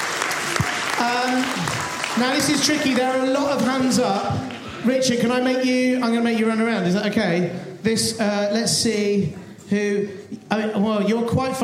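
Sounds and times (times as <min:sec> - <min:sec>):
audience applauding: 0:00.0 - 0:05.4
speech: 0:01.0 - 0:11.6.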